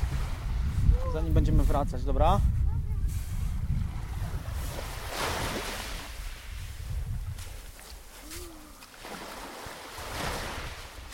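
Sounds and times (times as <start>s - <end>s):
low rumble of wind and surf: 0.0s - 11.1s
speech: 1.2s - 2.6s
sea waves washing onto a beach of round wave-smoothed pebbles: 4.1s - 6.8s, 7.6s - 11.1s.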